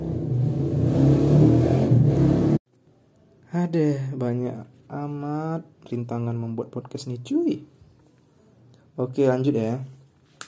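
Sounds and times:
motorcycle exhaust revving: 0.0s - 2.6s
speech: 3.6s - 7.7s, 9.0s - 10.0s.

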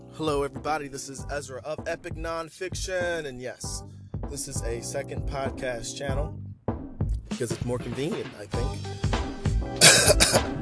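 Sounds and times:
speech: 0.2s - 6.4s, 7.4s - 9.0s, 9.8s - 10.6s
throat rumble: 9.8s - 10.4s
person coughing: 9.8s - 10.5s.

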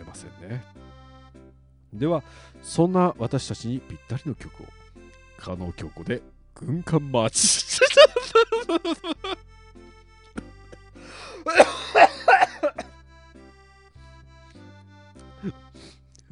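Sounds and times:
speech: 0.2s - 0.8s, 1.9s - 4.8s, 5.4s - 9.4s, 15.4s - 15.6s
laughter: 7.4s - 9.4s
person choking and coughing while reading aloud: 10.4s - 12.9s.

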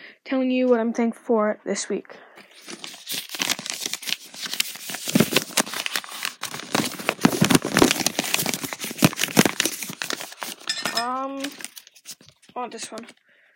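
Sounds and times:
speech: 0.3s - 2.8s, 12.6s - 13.3s
folded paper slip crinkling as it is opened by hand: 2.4s - 13.2s.

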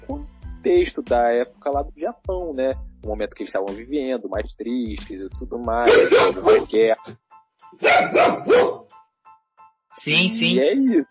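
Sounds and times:
speech: 0.6s - 8.9s, 10.0s - 11.1s
pet dog barking: 5.8s - 6.8s, 7.8s - 8.9s.

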